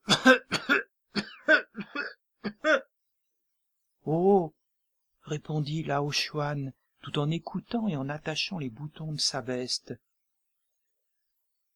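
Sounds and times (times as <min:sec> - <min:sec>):
coughing fit of harsh throaty coughs: 0:00.0 - 0:02.9
speech: 0:05.3 - 0:10.1.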